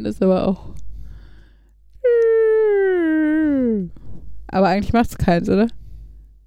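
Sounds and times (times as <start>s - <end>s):
speech: 0.0s - 0.8s, 4.5s - 5.8s
person vocally imitating a diving airplane's whine: 2.0s - 4.0s.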